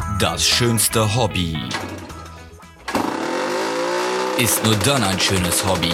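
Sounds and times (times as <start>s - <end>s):
speech: 0.2s - 1.9s, 4.4s - 5.9s
small two-stroke moped engines idling and revving outside: 1.7s - 5.9s.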